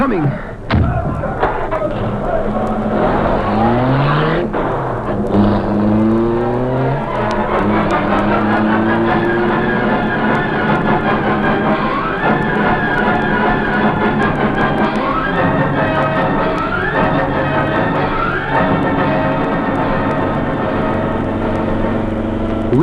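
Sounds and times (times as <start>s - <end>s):
car driving away fast with engine revving through gear shifts: 1.2s - 22.8s.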